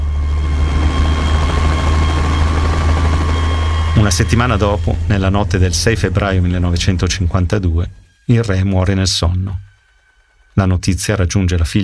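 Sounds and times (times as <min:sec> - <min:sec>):
propeller plane engine starting and roaring as the plane departs: 0:00.0 - 0:08.1
faint whine: 0:00.0 - 0:11.8
speech: 0:04.1 - 0:09.7, 0:10.6 - 0:11.8.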